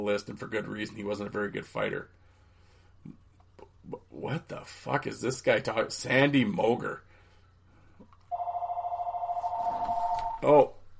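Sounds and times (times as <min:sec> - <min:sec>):
speech: 0:00.0 - 0:02.2, 0:03.0 - 0:03.2, 0:03.9 - 0:07.1, 0:10.4 - 0:10.8
phone ringing with an electronic warbling trill: 0:08.3 - 0:10.6.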